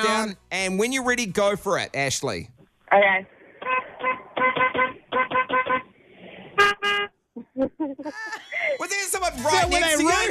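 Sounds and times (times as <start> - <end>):
speech: 0.0 - 3.4, 7.6 - 10.2
car horn tooting in traffic: 3.6 - 5.9, 6.6 - 7.2
laughter: 7.4 - 10.2.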